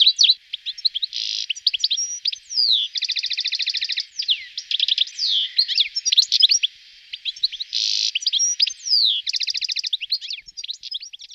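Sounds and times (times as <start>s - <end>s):
European goldfinch song with twittering, nasal buzzes, whistle and trills: 0.0s - 11.3s.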